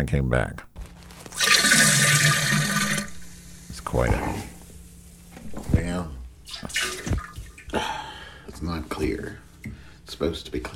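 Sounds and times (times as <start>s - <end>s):
speech: 0.0s - 0.7s, 3.9s - 4.5s, 8.6s - 9.5s, 10.1s - 10.7s
toilet flushing: 1.3s - 4.6s, 6.4s - 8.4s.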